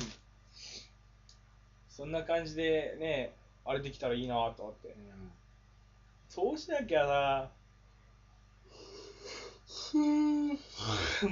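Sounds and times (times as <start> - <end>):
speech: 2.0 - 5.4, 6.3 - 7.6, 9.9 - 11.3
person yawning: 9.0 - 11.3.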